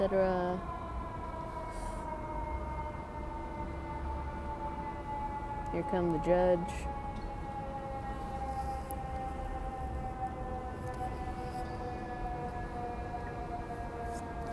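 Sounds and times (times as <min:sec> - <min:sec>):
speech: 0:00.0 - 0:00.8, 0:05.7 - 0:07.0
dense rumble of New York street traffic: 0:00.0 - 0:14.5
siren wailing on a New York street: 0:00.0 - 0:14.5.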